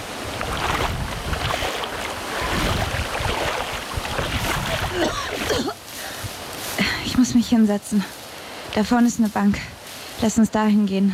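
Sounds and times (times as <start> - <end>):
rushing wind-like water wash: 0.0 - 7.2
person swimming through choppy water to the shore: 0.3 - 5.8
speech: 7.5 - 11.1.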